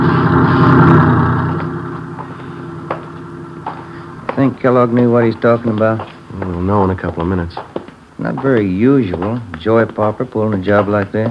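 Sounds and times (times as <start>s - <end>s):
truck engine rumbling past on a small movie studio lot: 0.0s - 11.2s
speech: 4.4s - 11.2s.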